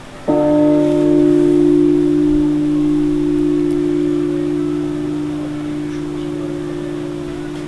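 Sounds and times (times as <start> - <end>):
small steel bell ringing in Osterode: 0.3 - 7.6.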